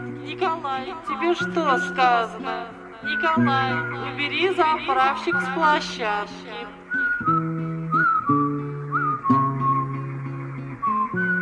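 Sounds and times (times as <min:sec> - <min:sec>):
speech: 0:00.3 - 0:07.4
person whistling a wavering gliding tune: 0:03.0 - 0:04.3, 0:05.2 - 0:06.0, 0:06.8 - 0:10.1, 0:10.8 - 0:11.4.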